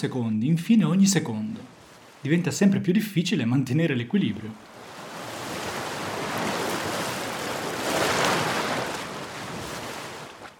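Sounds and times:
speech: 0.0s - 4.7s
ocean waves breaking: 1.5s - 2.5s, 4.3s - 10.5s.

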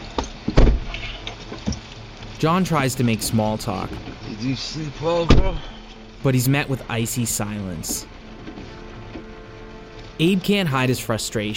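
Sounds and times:
pouring rain: 0.0s - 11.5s
heavy truck door thudding shut: 0.4s - 1.0s, 5.3s - 5.7s
speech: 2.4s - 8.1s, 10.2s - 11.5s.

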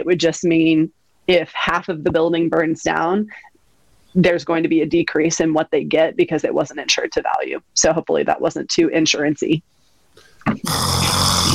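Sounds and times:
speech: 0.0s - 3.5s, 4.2s - 9.8s, 10.4s - 11.4s
person imitating snoring and waking up: 10.6s - 11.5s.

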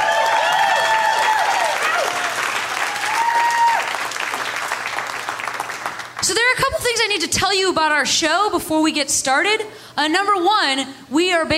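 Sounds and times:
audience whoops and cheers: 0.0s - 4.1s
audience applause at a comedy show: 0.0s - 6.2s
speech: 7.0s - 11.5s.

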